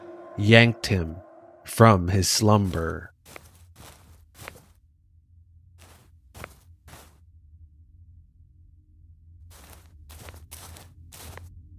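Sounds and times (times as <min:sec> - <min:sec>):
steady low hum: 0:00.0 - 0:11.7
speech: 0:00.4 - 0:03.4
crisp scuffing footsteps pacing back and forth: 0:02.6 - 0:04.7, 0:05.8 - 0:07.2, 0:09.5 - 0:11.5.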